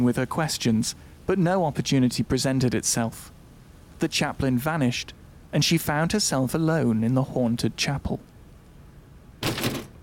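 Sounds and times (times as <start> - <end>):
speech: 0.0 - 3.4, 4.0 - 8.3
wooden door jerked against its bolt: 9.4 - 10.0.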